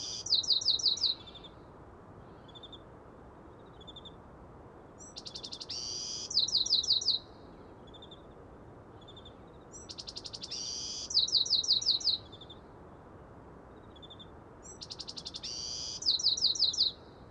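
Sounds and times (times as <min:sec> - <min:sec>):
Bewick's wren singing bright buzzy trilled phrases: 0:00.0 - 0:01.6, 0:05.0 - 0:08.2, 0:09.0 - 0:12.6, 0:13.8 - 0:17.0
soft constant hiss of noise: 0:00.0 - 0:17.2.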